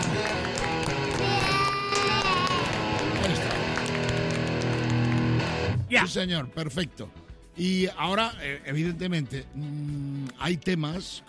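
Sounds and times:
crowd cheering and clapping: 0:00.0 - 0:05.8
speech: 0:06.0 - 0:11.2.

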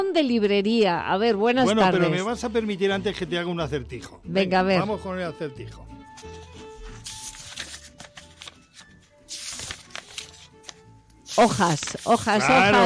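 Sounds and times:
speech: 0:00.0 - 0:06.5, 0:11.4 - 0:12.8
person speaking loudly: 0:01.6 - 0:02.4, 0:12.2 - 0:12.8
book pages turning: 0:06.1 - 0:12.8.

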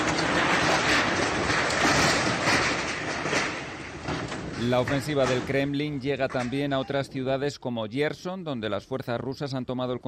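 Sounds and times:
university building collapsing after an attack in Kharkiv: 0:00.0 - 0:07.5
speech: 0:04.6 - 0:10.0.

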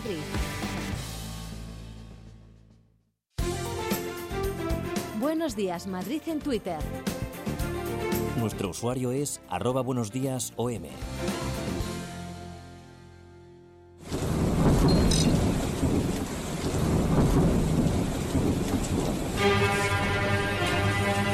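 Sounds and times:
speech: 0:00.1 - 0:00.6, 0:05.4 - 0:07.1, 0:08.4 - 0:11.4
soft orchestral music: 0:03.4 - 0:13.3, 0:19.4 - 0:21.3
thunder: 0:14.0 - 0:19.5
heavy rain pouring: 0:14.0 - 0:21.3.

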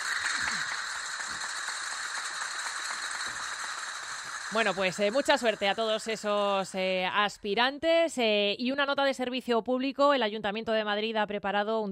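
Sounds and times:
quick clicking applause: 0:00.0 - 0:06.4
speech: 0:04.5 - 0:11.9.

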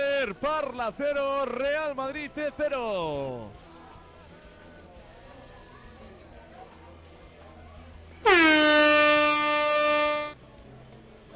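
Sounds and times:
speech: 0:00.2 - 0:03.6
air horn blast: 0:08.2 - 0:10.4.

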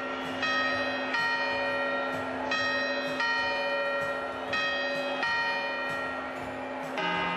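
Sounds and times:
clock tower bell chiming: 0:00.0 - 0:07.3.

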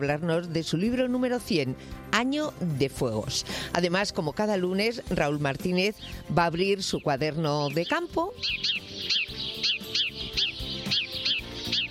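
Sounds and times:
speech: 0:00.0 - 0:09.2
low continuous tonal background: 0:00.0 - 0:11.8
sparrows chirping: 0:03.8 - 0:11.8.

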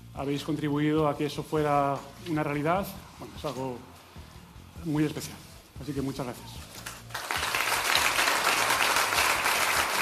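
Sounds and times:
speech: 0:00.2 - 0:03.9, 0:04.8 - 0:06.6
large audience applauding: 0:07.1 - 0:09.9.

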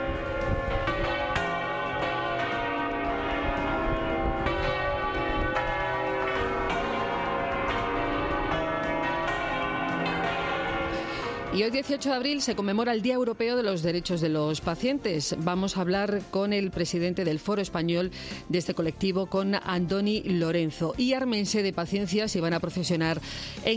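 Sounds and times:
large cathedral church bells pealing: 0:00.0 - 0:14.3
speech: 0:11.6 - 0:23.7.

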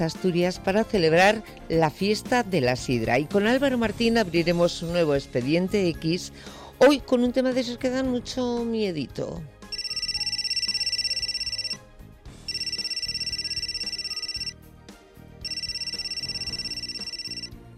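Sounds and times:
speech: 0:00.0 - 0:09.6
telephone ringing in electronic bursts: 0:09.7 - 0:11.8, 0:12.5 - 0:14.5, 0:15.4 - 0:17.5.

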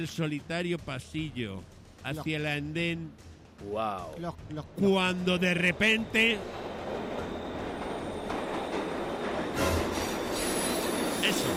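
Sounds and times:
speech: 0:00.0 - 0:06.6
underground train pulling into a station platform: 0:04.6 - 0:11.5
underground train wheels squealing: 0:05.4 - 0:11.5.

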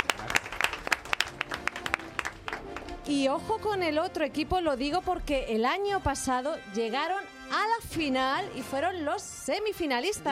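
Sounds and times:
school quiz-competition audience clapping: 0:00.0 - 0:03.1
speech: 0:03.1 - 0:10.3.

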